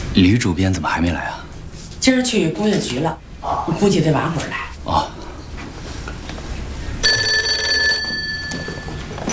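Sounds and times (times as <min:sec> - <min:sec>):
speech: 0:00.2 - 0:01.4, 0:02.0 - 0:05.1
old-fashioned telephone bell ringing: 0:07.0 - 0:09.2.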